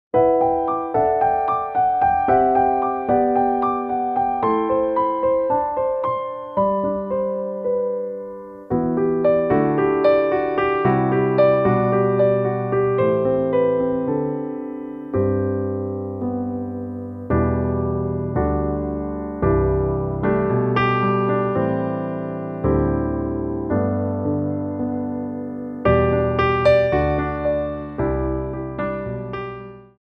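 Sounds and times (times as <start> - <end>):
instrumental backing track of a song: 0.2 - 29.9.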